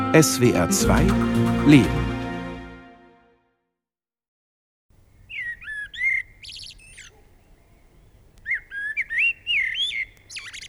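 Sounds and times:
speech: 0.1 - 2.1
blackbird singing: 5.2 - 10.6.

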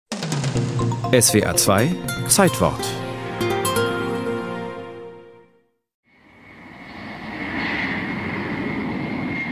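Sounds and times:
music: 0.1 - 5.8
speech: 1.1 - 3.1
white Boeing 747 with red side stripe throttling up and taking off on its first flight: 6.2 - 9.5.

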